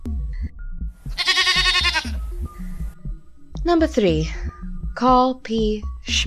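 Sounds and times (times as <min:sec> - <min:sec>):
farm animal noises: 0:01.1 - 0:02.2
mountain goat bleating: 0:01.1 - 0:02.3
speech: 0:03.6 - 0:06.2.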